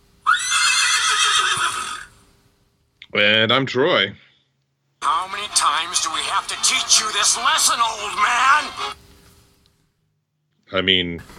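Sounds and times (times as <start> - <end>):
horse whinny with a shrill quavering neigh: 0.2 - 2.2
speech: 3.2 - 4.3, 5.0 - 9.0, 10.7 - 11.3.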